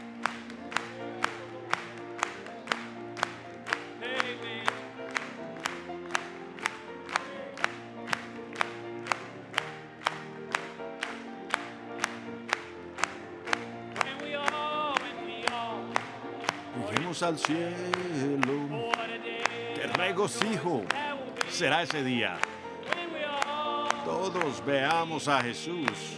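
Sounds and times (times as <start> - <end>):
audience clapping in time: 0.0 - 26.1
music with singing voices: 0.0 - 26.1
speech: 17.2 - 19.1, 20.0 - 21.0, 21.6 - 22.5, 24.1 - 26.1.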